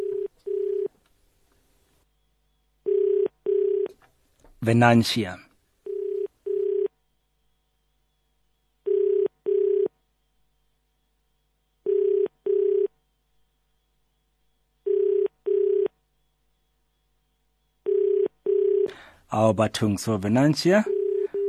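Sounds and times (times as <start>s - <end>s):
telephone ringback tone on an unanswered outgoing call: 0.0s - 0.9s, 2.8s - 3.9s, 5.8s - 7.0s, 8.8s - 10.0s, 11.8s - 13.0s, 14.8s - 16.0s, 17.8s - 19.1s, 20.8s - 21.4s
speech: 4.6s - 5.4s, 19.4s - 21.0s.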